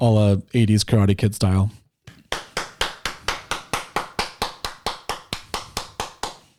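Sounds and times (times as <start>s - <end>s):
speech: 0.0s - 1.8s
man's sharp hand claps trying to catch a gnat: 2.1s - 6.5s.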